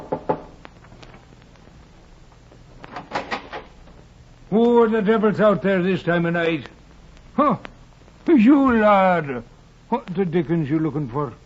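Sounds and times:
knocking on a wooden cabin door aboard a docked ship: 0:00.0 - 0:00.5
speech: 0:04.5 - 0:06.8, 0:07.4 - 0:11.4.

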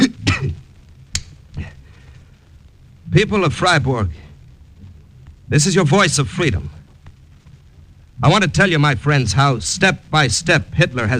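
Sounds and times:
man coughing in harsh throaty bursts: 0:00.0 - 0:00.6
speech: 0:03.1 - 0:04.3, 0:05.5 - 0:06.8, 0:08.2 - 0:11.1.

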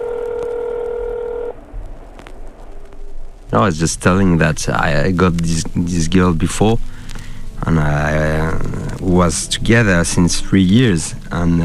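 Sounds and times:
phone ringing with a steady electronic tone: 0:00.0 - 0:01.6
faint noise: 0:00.0 - 0:11.6
speech: 0:03.5 - 0:06.9, 0:07.6 - 0:11.6.

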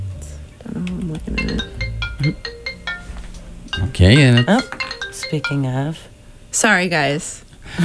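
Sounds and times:
phone ringtone for an incoming call: 0:01.2 - 0:06.1
speech: 0:04.0 - 0:07.8.

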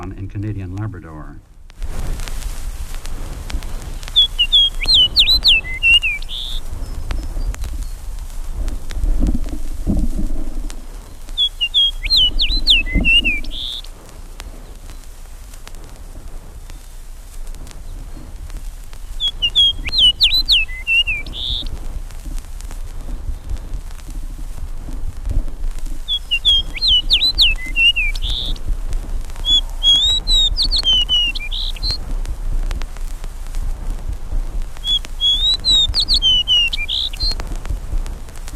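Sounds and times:
soft low outdoor rumble: 0:00.0 - 0:38.5
speech: 0:00.1 - 0:02.3, 0:04.8 - 0:05.6
songbird of the northern spruce forest singing near Hudson Bay: 0:03.7 - 0:08.0, 0:11.1 - 0:13.9, 0:19.0 - 0:21.7, 0:26.0 - 0:28.6, 0:29.4 - 0:32.0, 0:34.8 - 0:37.4.

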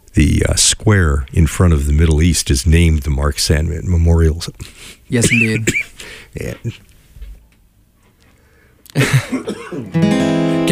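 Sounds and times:
speech: 0:00.2 - 0:06.9, 0:09.0 - 0:10.2
person coughing harshly: 0:05.2 - 0:06.0, 0:09.0 - 0:10.0.

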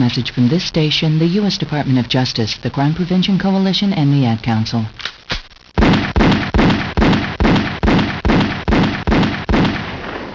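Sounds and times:
speech: 0:00.0 - 0:05.2
loud gunshots with brief echo: 0:05.0 - 0:10.3.

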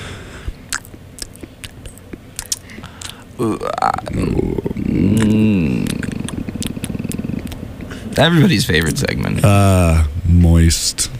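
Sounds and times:
mouth noises made into a microphone: 0:00.0 - 0:10.8
speech: 0:03.4 - 0:06.0, 0:08.2 - 0:11.1.

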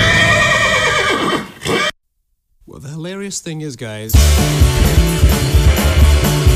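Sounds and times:
horse whinnying with a shaky descending neigh: 0:00.0 - 0:02.0
speech: 0:03.3 - 0:06.4.

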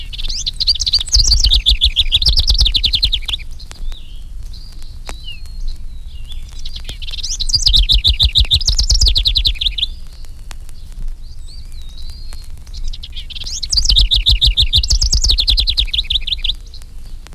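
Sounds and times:
house wren bubbling song of rapid chattering notes: 0:00.0 - 0:03.4, 0:06.7 - 0:10.4, 0:11.4 - 0:16.8
faint soft house wren notes: 0:00.0 - 0:17.3.

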